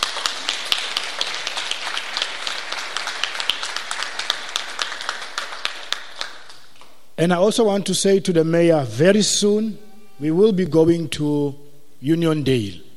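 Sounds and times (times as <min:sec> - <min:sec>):
crowd applauding at an event: 0:00.0 - 0:06.6
speech: 0:07.2 - 0:12.8.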